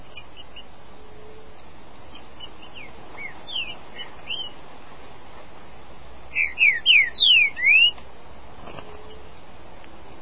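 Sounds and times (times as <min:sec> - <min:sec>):
green-winged saltator singing a rich whistled phrase: 0:06.4 - 0:08.0.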